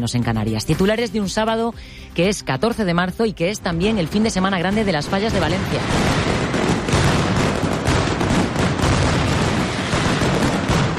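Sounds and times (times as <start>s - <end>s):
speech: 0.0s - 6.6s
mascletà firecracker explosions at the Valencia Fallas with 274 kilos of gunpowder: 3.8s - 10.9s.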